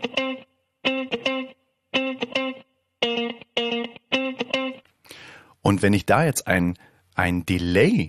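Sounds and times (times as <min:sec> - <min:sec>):
funky electric guitar riff with chord stabs: 0:00.0 - 0:05.2
speech: 0:05.7 - 0:08.0.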